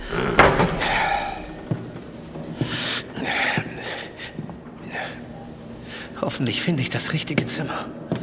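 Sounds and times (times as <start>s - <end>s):
door banging shut: 0.0s - 3.0s
sharp knocks: 0.0s - 3.1s
speech: 6.4s - 8.1s.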